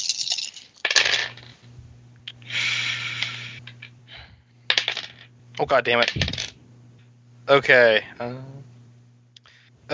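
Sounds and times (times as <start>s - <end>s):
faint low hum: 0.0s - 9.9s
dice rolling on a hard tabletop: 0.8s - 1.6s, 4.7s - 5.3s, 6.0s - 6.6s
speech: 5.6s - 6.2s, 7.5s - 8.7s.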